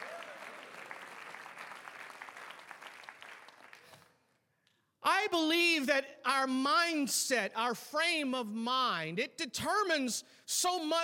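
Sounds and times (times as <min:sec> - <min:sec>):
audience applauding: 0:00.0 - 0:04.2
speech: 0:05.2 - 0:11.0.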